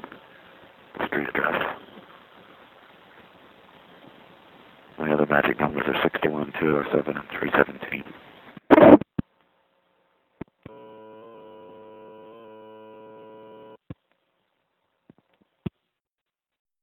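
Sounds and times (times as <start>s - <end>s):
speech: 1.1s - 1.9s, 5.3s - 8.2s
buzzy telephone line tone heard through a phone: 10.7s - 13.8s.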